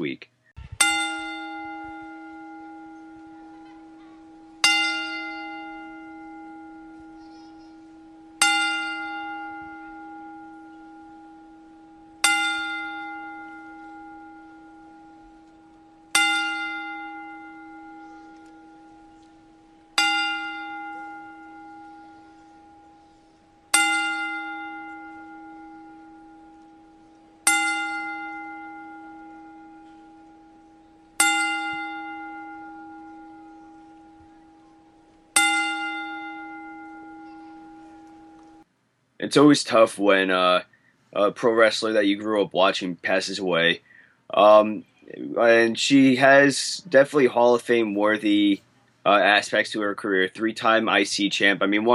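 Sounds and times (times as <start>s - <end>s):
speech: 0.1s - 0.3s, 39.2s - 51.9s
single bell tolling in a ten bell salute: 0.8s - 38.6s.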